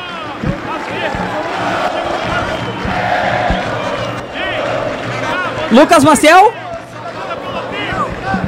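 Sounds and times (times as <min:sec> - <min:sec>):
large crowd of Brasil football fans chanting and shouting in a stadium: 0:00.0 - 0:08.4
sharp claps and thuds: 0:00.3 - 0:05.3
speech: 0:00.4 - 0:01.8, 0:05.7 - 0:06.6.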